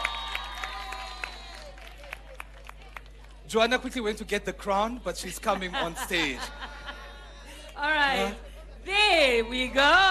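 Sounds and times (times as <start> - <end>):
crowd cheering with excited voices: 0.0 - 2.4
crowd clapping: 0.0 - 3.5
speech: 3.5 - 6.7, 7.8 - 10.1
laughter: 5.3 - 7.6.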